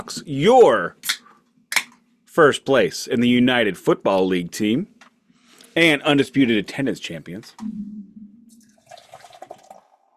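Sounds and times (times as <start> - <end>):
speech: 0.0 - 1.1, 2.4 - 4.9, 5.8 - 8.1
IPA beer poured down the middle of a glass: 8.6 - 10.1.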